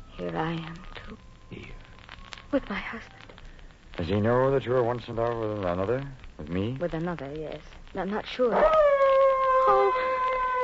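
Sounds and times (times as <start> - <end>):
speech: 0.2 - 1.2, 2.5 - 3.2, 4.0 - 8.8
brief wavering dog cry: 8.5 - 10.6
dogs howling: 8.5 - 10.6.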